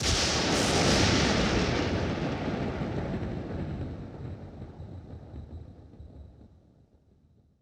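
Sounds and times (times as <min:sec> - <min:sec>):
lightning strike: 0:00.0 - 0:04.0
thunder: 0:00.0 - 0:06.6.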